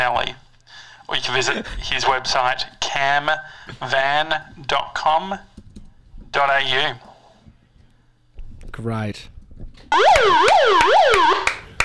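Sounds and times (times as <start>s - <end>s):
speech: 0.0s - 0.4s, 1.1s - 5.5s, 6.3s - 7.1s, 8.8s - 9.3s, 9.9s - 11.6s
electronic alarm wailing at full volume: 9.9s - 11.5s.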